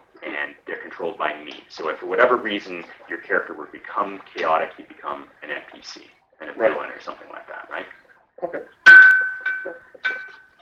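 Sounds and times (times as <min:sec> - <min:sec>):
brief talking: 0:00.0 - 0:08.8
speech: 0:01.0 - 0:09.0
bell struck with clear sustained tone: 0:08.9 - 0:10.4.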